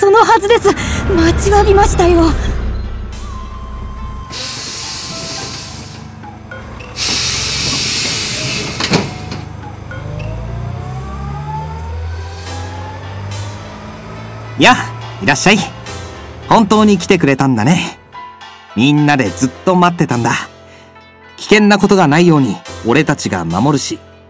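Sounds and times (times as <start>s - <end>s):
bus engine rumbling and whining as it pulls in: 0.0s - 17.2s
speech: 0.3s - 2.5s, 14.6s - 15.8s, 16.5s - 18.0s, 18.8s - 20.5s, 21.4s - 24.1s
bus air brakes hissing: 4.2s - 6.2s, 6.8s - 9.5s.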